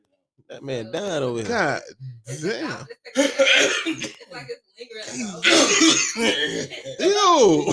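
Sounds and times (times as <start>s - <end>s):
speech: 0.5s - 7.7s
man coughing hard in raspy bursts: 3.2s - 4.2s, 5.1s - 7.7s.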